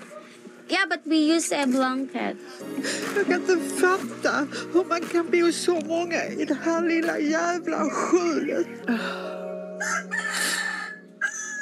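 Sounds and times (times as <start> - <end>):
speech: 0.7 - 10.0
rooster crowing: 9.7 - 11.6.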